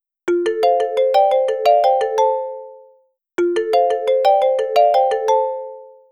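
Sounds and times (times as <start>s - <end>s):
phone ringtone: 0.3s - 6.1s.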